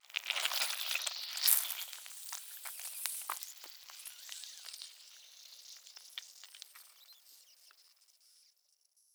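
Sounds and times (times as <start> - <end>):
flesh squeezed with squealing air pressure: 0.1 - 7.1.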